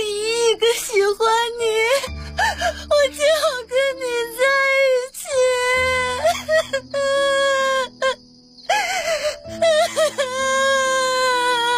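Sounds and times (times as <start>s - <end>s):
speech: 0.6s - 4.4s
person sobbing and wailing: 1.6s - 4.5s, 5.1s - 11.7s.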